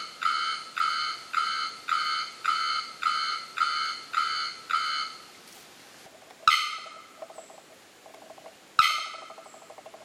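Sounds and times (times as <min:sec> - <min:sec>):
bearded bellbird calling with bell-like metallic notes and explosive clangs: 0:00.0 - 0:05.2, 0:06.5 - 0:07.6, 0:08.8 - 0:10.0.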